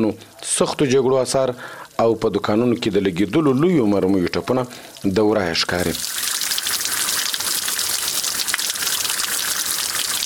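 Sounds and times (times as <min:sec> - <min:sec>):
speech: 0:00.0 - 0:06.2
fresh water rushing through a narrow roadside channel beside a war-damaged bazaar: 0:06.0 - 0:10.2.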